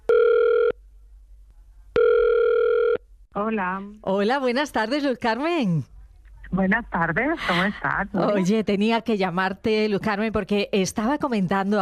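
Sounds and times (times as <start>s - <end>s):
telephone ringback tone: 0.1s - 0.8s, 2.0s - 3.0s
speech: 3.4s - 5.9s, 6.5s - 11.7s.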